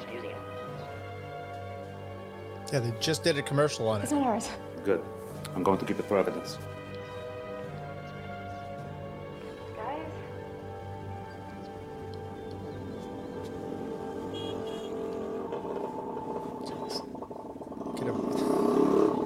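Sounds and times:
speech: 2.7 - 6.7
scooter engine humming: 10.4 - 19.2.

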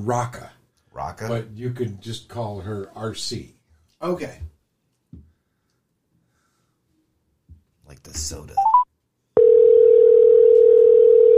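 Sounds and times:
speech: 0.0 - 0.4, 1.1 - 4.5, 7.9 - 8.8
telephone ringing tone on an outgoing call: 9.4 - 11.3.

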